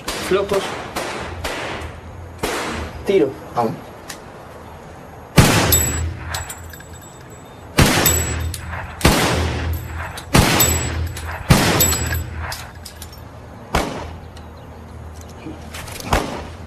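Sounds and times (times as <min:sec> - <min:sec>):
gunshots at target practice at a cardboard target: 0:00.0 - 0:03.0, 0:05.4 - 0:06.5, 0:07.8 - 0:12.8, 0:13.7 - 0:14.2, 0:16.1 - 0:16.6
speech: 0:00.3 - 0:00.9, 0:03.1 - 0:03.9.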